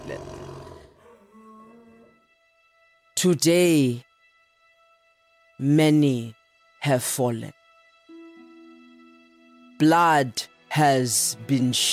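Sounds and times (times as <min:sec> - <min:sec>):
speech: 0:00.0 - 0:00.4, 0:03.2 - 0:04.1, 0:05.6 - 0:07.6, 0:09.8 - 0:11.9
chorus of roars: 0:00.0 - 0:02.1.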